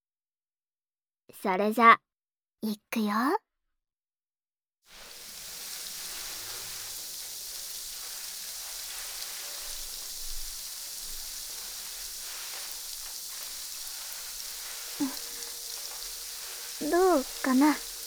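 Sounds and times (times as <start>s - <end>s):
speech: 1.4s - 3.4s, 16.8s - 17.9s
carbonated shampoo foam bubbles popping on a scalp during a head massage: 4.9s - 18.0s.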